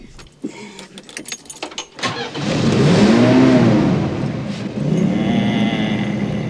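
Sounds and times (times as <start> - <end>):
sharp clicks and rattles: 0.0 - 2.2
car engine starting and idling: 1.8 - 6.4.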